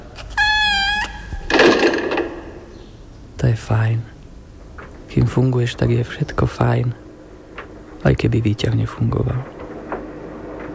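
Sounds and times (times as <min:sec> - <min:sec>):
cat meowing: 0:00.0 - 0:01.7
speech: 0:03.4 - 0:04.1, 0:05.2 - 0:07.0, 0:08.0 - 0:09.6.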